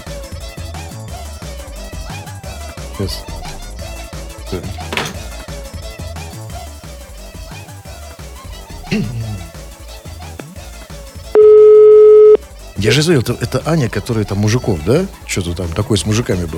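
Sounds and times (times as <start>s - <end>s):
music: 0.0s - 11.4s, 12.4s - 16.5s
speech: 3.0s - 3.4s, 4.5s - 5.0s, 8.9s - 9.2s, 12.8s - 16.5s
telephone call tone while dialing: 11.4s - 12.4s.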